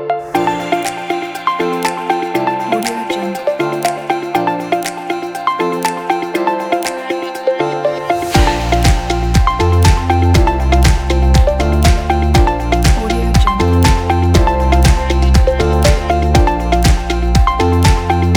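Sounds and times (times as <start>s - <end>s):
upbeat pop music: 0.2s - 18.3s.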